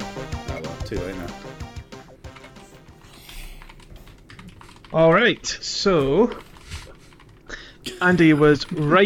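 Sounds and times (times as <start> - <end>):
speech: 0.9 - 1.6, 4.9 - 6.5, 8.0 - 9.0
computer keyboard typing: 3.6 - 9.0.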